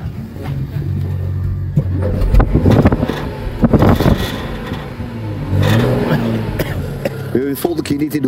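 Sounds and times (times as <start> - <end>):
Porsche hybrid car engine starting, revving and idling: 0.4 - 8.1
wind buffeting the microphone: 1.9 - 5.8
speech: 7.4 - 8.2.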